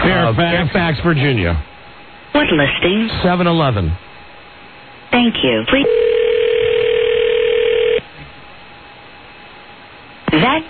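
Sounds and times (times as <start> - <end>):
speech: 0.1 - 1.7, 2.4 - 4.1, 5.1 - 6.1
telephone dial tone while dialing a number: 5.8 - 8.0.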